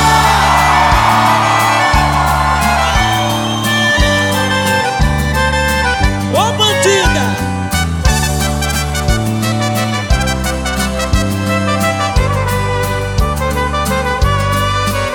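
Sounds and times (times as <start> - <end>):
large concert crowd shouting and whooping: 0.0 - 5.3
loud live concert music with a pounding bass line: 0.0 - 15.1
singer calling out to the concert crowd: 6.3 - 7.4.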